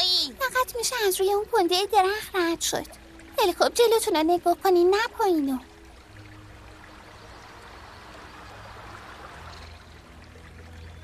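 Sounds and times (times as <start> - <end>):
fast-flowing stream water rushing: 0.0 - 11.0
speech: 0.7 - 5.7.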